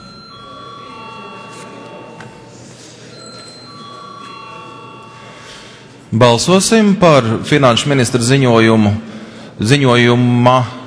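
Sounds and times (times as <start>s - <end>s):
electric voting call bell ringing in the Latvian parliament: 0.0s - 5.9s
low murmur of people: 0.0s - 10.8s
speech: 6.1s - 10.8s.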